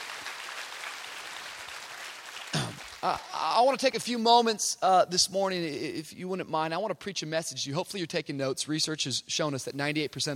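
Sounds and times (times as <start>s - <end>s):
large crowd applauding during a sermon: 0.0s - 3.5s
speech: 3.0s - 10.3s.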